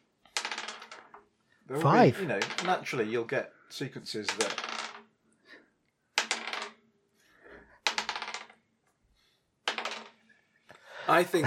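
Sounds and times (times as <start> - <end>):
dice rolling on a table: 0.1 - 1.4, 2.3 - 2.9, 4.1 - 5.2, 6.1 - 6.9, 7.7 - 9.0, 9.6 - 10.3
speech: 1.7 - 4.7, 11.1 - 11.4.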